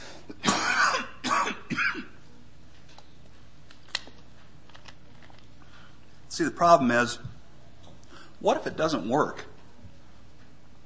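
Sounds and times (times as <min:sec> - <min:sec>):
harsh throat-clearing coughs: 0:00.3 - 0:02.2
speech: 0:06.4 - 0:07.3, 0:08.4 - 0:09.5.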